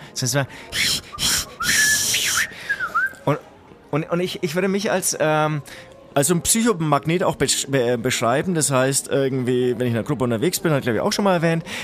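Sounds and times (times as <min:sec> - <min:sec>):
speech: 0:00.2 - 0:01.0, 0:03.2 - 0:11.8
person imitating a train's thin breathy whistle: 0:00.7 - 0:03.2.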